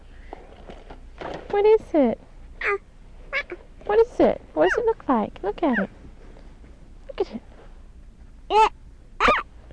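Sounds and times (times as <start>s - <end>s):
speech: 1.6s - 2.9s, 3.5s - 6.0s, 7.2s - 7.5s, 8.5s - 8.8s
dog barking: 9.2s - 9.4s.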